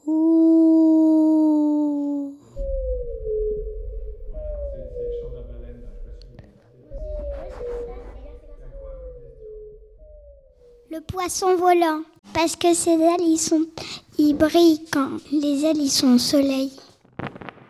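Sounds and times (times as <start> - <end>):
child imitating a whale's cry: 0.0 - 2.5
speech: 11.3 - 16.8.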